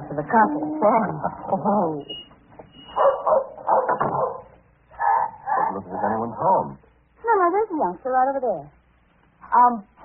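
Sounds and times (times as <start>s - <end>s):
speech: 0.2s - 2.2s, 5.7s - 6.9s, 7.7s - 8.8s, 9.5s - 10.0s
dog barking with a whiny yelping edge: 2.9s - 5.9s.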